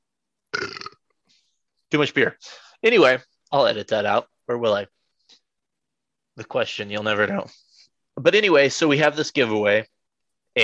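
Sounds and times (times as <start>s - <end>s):
loud raspy rumbling burp: 0.5s - 1.1s
speech: 1.9s - 5.0s, 6.4s - 7.6s, 8.2s - 9.9s.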